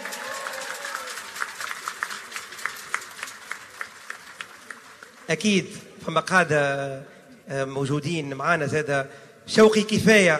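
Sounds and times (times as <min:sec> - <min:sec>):
audience in Tunisia applauding a band conductor: 0:00.0 - 0:05.6
speech: 0:05.3 - 0:10.3.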